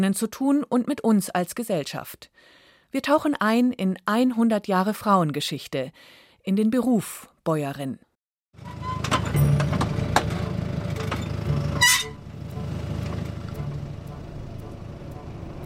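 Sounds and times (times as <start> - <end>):
speech: 0.0 - 8.0
GPS-steered tractor engine droning while spreading fertilizer: 8.6 - 15.6.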